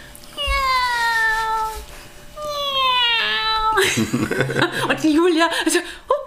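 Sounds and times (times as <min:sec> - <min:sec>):
person imitating a cat's meow: 0:00.4 - 0:03.8
laughter: 0:03.8 - 0:05.0
speech: 0:03.9 - 0:06.1.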